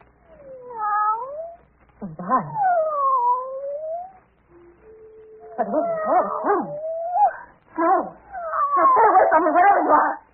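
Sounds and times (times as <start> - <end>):
cat yowling: 0.3 - 1.6, 2.5 - 4.2, 5.4 - 7.4, 8.3 - 9.3
speech: 2.0 - 2.7, 5.6 - 6.9, 7.8 - 8.2, 8.8 - 10.2.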